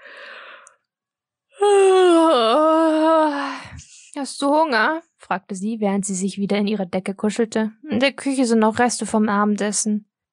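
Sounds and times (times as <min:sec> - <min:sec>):
long drawn-out voiced yawn: 0:01.6 - 0:03.5
speech: 0:04.2 - 0:10.1.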